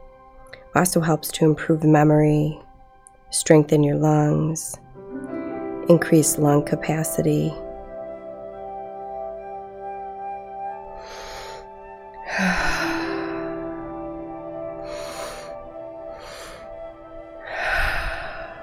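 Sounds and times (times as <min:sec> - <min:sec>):
steady soft musical drone: 0:00.0 - 0:18.6
speech: 0:00.8 - 0:02.6, 0:03.3 - 0:04.8, 0:05.9 - 0:07.6
deep breathing during a relaxation breathing exercise: 0:11.0 - 0:13.7, 0:14.7 - 0:18.6.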